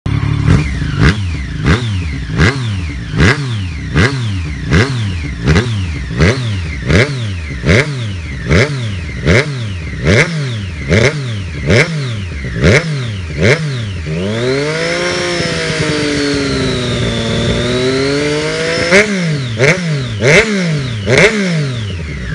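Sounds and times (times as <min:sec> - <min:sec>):
Street 765 exhaust system: 0:00.1 - 0:22.3.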